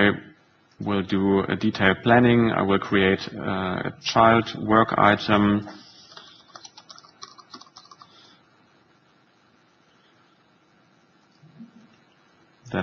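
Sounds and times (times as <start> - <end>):
speech: 0.0 - 5.8
typing on a computer keyboard: 6.1 - 8.2.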